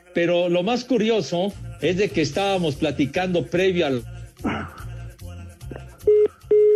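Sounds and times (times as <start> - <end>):
speech: 0.2 - 4.8
telephone dialing tones: 6.1 - 6.7.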